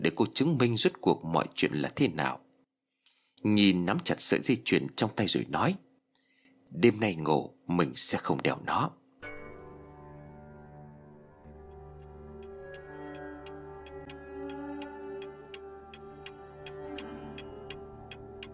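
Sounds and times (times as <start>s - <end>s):
speech: 0.1s - 2.5s, 3.4s - 5.9s, 6.7s - 9.0s
soft sustained musical drone: 9.2s - 18.5s
clock ticking: 11.5s - 18.5s.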